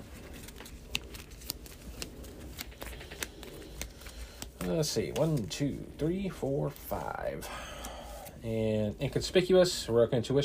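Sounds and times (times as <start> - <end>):
playing cards drawn from a deck during a tabletop card game: 0.0 - 5.6
speech: 4.7 - 7.7, 8.4 - 10.4.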